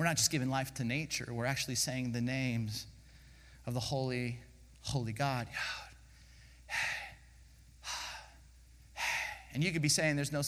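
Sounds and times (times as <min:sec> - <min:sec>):
speech: 0:00.0 - 0:03.0, 0:03.6 - 0:05.9, 0:09.5 - 0:10.4
person breathing in and out: 0:03.0 - 0:03.7, 0:05.5 - 0:09.6.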